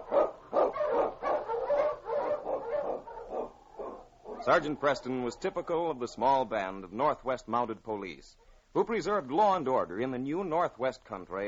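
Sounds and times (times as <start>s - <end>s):
pack of husky sled dogs barking and yipping excitedly: 0.0s - 5.9s
speech: 4.4s - 11.4s.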